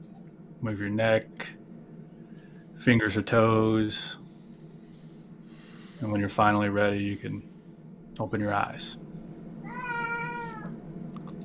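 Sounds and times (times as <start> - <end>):
low steady hum of noise: 0.0 - 11.4
speech: 0.6 - 1.5, 2.8 - 4.2, 6.0 - 7.5, 8.2 - 9.0
cat meowing: 9.6 - 10.8.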